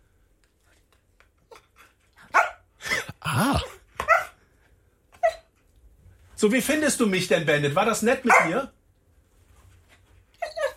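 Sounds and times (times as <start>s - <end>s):
dog yipping and barking: 2.3s - 2.6s, 4.0s - 4.4s, 8.3s - 8.6s, 10.4s - 10.7s
speech: 6.4s - 8.8s.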